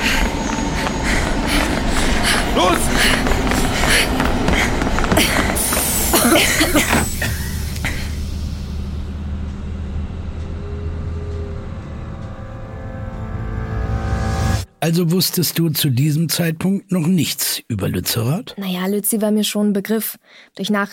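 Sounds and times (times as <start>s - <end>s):
idling train hissing and clattering at a station: 0.0s - 11.5s
idling train engine hum with faint tonal whine: 0.0s - 14.7s
speech: 14.9s - 20.9s.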